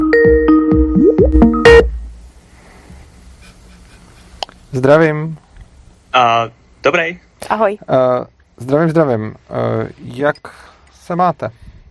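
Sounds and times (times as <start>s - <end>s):
electronic phone call tones with pitched beeps and sliding notes: 0.2s - 1.9s
speech: 4.8s - 5.4s, 6.1s - 11.7s.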